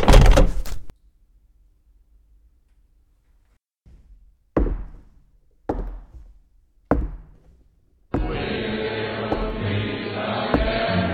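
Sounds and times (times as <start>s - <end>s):
door banging shut: 0.0s - 0.9s, 8.2s - 11.0s.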